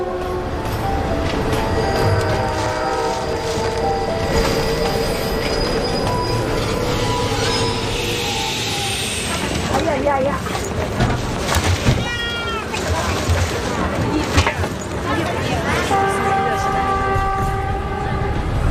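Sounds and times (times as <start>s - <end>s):
train climbing a mountain railway between Tiekou and Xinliang in China: 0.0s - 18.6s
high metallic train wheel squeals: 4.2s - 9.8s.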